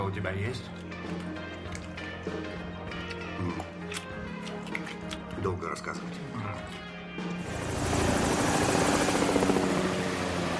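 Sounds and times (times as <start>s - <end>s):
speech: 0.1s - 1.5s, 2.2s - 4.0s, 5.4s - 9.6s
helicopter rotor roar in flight: 7.4s - 10.5s.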